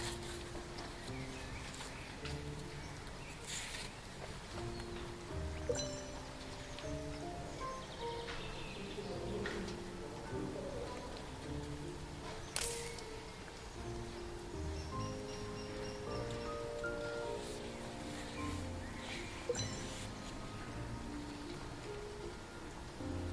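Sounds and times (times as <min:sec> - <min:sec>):
faint footsteps: 0:00.0 - 0:23.0
mountain forest nature ambience: 0:00.0 - 0:23.3
soft music with gentle sustained low tones: 0:00.0 - 0:23.3
people talking: 0:08.7 - 0:12.2
sharp clicks: 0:12.4 - 0:13.2.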